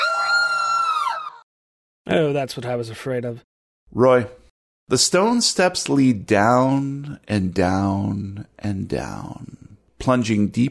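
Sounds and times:
piercing high-pitched scream from a dark basement: 0:00.0 - 0:01.4
speech: 0:02.1 - 0:10.6.

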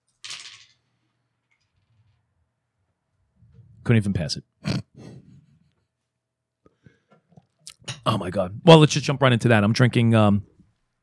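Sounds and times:
dice tumbling onto a hard surface: 0:00.1 - 0:02.2
speech: 0:03.8 - 0:04.9, 0:08.2 - 0:10.5.

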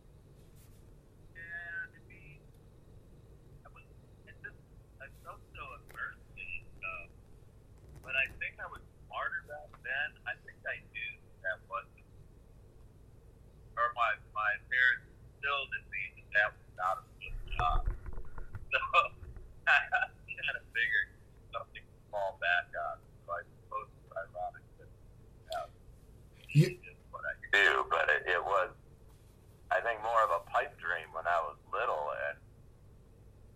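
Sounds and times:
voice on a thin tinny phone line breaking up: 0:01.4 - 0:02.4, 0:03.7 - 0:07.1, 0:08.1 - 0:11.9, 0:13.8 - 0:17.9, 0:18.7 - 0:19.1, 0:19.7 - 0:24.8, 0:26.5 - 0:28.8, 0:29.7 - 0:32.4.

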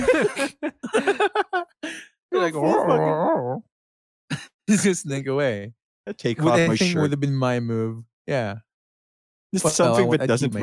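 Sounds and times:
laughter: 0:00.0 - 0:03.1, 0:04.3 - 0:07.6, 0:09.6 - 0:10.6
short burst of voiced sounds: 0:00.0 - 0:03.6, 0:04.3 - 0:08.6, 0:09.6 - 0:10.6
speech: 0:00.1 - 0:01.3, 0:04.7 - 0:08.7, 0:09.5 - 0:10.6
person imitating a dog with warbling whimpering vocal sound: 0:02.4 - 0:03.6, 0:06.4 - 0:07.2, 0:09.6 - 0:10.6.

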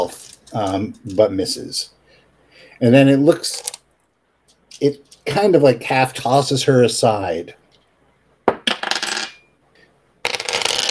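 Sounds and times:
speech: 0:00.0 - 0:02.0, 0:02.8 - 0:03.7, 0:04.8 - 0:07.6
dice clattering onto a hard table: 0:03.5 - 0:03.8, 0:08.6 - 0:09.3, 0:10.2 - 0:10.9.

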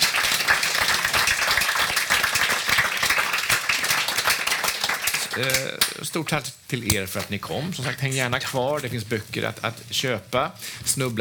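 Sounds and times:
room full of people applauding: 0:00.0 - 0:05.9
speech: 0:05.4 - 0:11.1.

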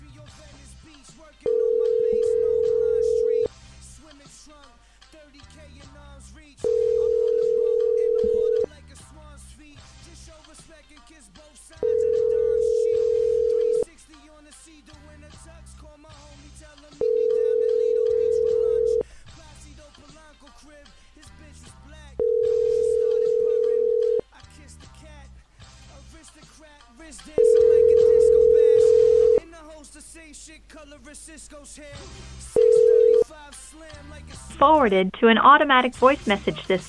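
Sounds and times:
telephone ringback tone of a call to a cell phone: 0:01.5 - 0:03.5, 0:06.6 - 0:08.7, 0:11.8 - 0:13.9, 0:17.0 - 0:19.0, 0:22.2 - 0:24.2, 0:27.4 - 0:29.4, 0:32.5 - 0:33.3
speech: 0:34.9 - 0:36.8.

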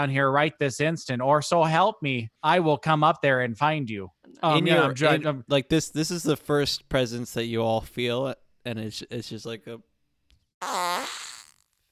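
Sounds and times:
speech: 0:00.0 - 0:09.9, 0:10.6 - 0:11.2
gentle buzzy drawn-out fart: 0:10.6 - 0:11.9.

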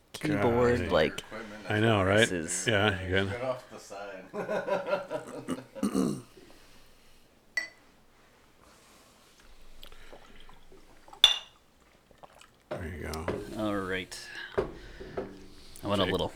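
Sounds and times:
speech: 0:00.2 - 0:06.3, 0:15.9 - 0:16.3
laughter: 0:00.3 - 0:06.2
drink pouring into a glass: 0:09.5 - 0:13.9.

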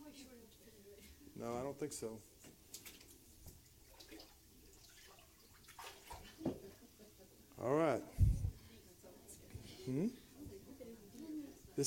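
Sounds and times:
speech: 0:01.4 - 0:02.3, 0:07.6 - 0:08.2, 0:09.9 - 0:10.2
water sloshing and splashing in a baptismal tank: 0:02.6 - 0:06.8.

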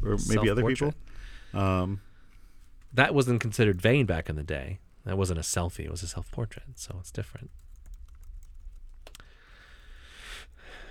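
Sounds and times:
speech: 0:00.0 - 0:02.1, 0:02.9 - 0:07.6
man typing on a keyboard: 0:07.3 - 0:09.4.

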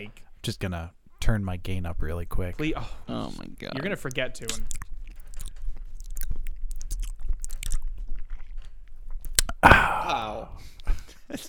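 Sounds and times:
speech: 0:00.0 - 0:04.8, 0:11.3 - 0:11.4
person imitating ASMR wet chewing and crunching mouth sounds: 0:03.6 - 0:09.6
sharp clicks of teeth snapping together: 0:03.8 - 0:09.6.

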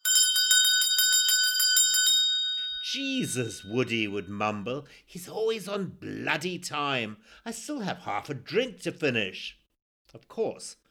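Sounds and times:
hand bell shaken rapidly for lunch: 0:00.0 - 0:04.3
speech: 0:02.9 - 0:10.8.

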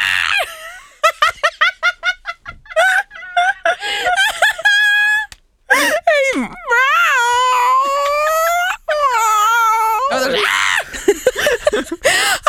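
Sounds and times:
person laughing: 0:00.2 - 0:06.0, 0:10.1 - 0:12.4
person imitating an angry yowling cat: 0:06.4 - 0:10.8.

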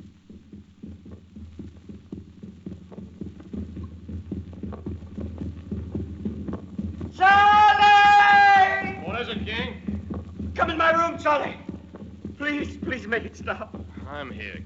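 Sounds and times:
heartbeat through contact microphone beneath sleeping person's body: 0:00.0 - 0:14.6
speech: 0:10.6 - 0:11.6, 0:12.4 - 0:14.6.

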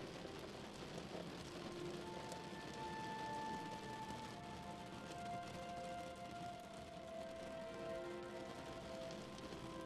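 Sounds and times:
rain pattering on a window at night: 0:00.0 - 0:09.8.

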